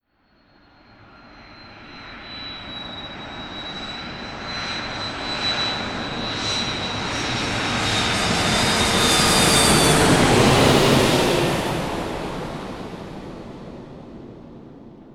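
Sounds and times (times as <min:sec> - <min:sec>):
large airliner: 0:00.2 - 0:15.1.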